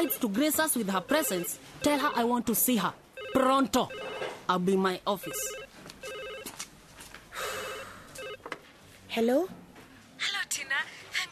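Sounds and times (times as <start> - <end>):
speech: 0.0 - 5.7, 9.2 - 9.6
telephone ringing in trilling bursts: 0.0 - 6.6, 7.6 - 8.5.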